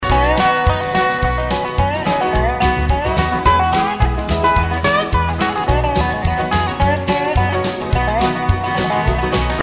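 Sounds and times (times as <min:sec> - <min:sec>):
dobro: 0:00.0 - 0:09.6.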